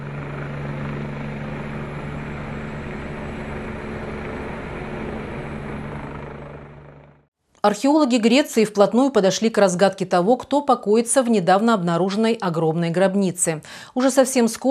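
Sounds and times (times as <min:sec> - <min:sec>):
helicopter rotor droning with engine roar: 0:00.0 - 0:07.3
speech: 0:07.6 - 0:14.6.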